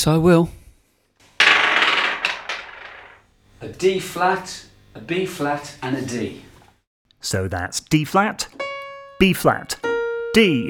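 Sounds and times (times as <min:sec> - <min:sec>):
speech: 0:00.0 - 0:00.6, 0:03.6 - 0:06.5, 0:07.2 - 0:08.6, 0:09.2 - 0:10.6
twelve-sided musician's dice clattering on a hard surface: 0:01.4 - 0:03.2.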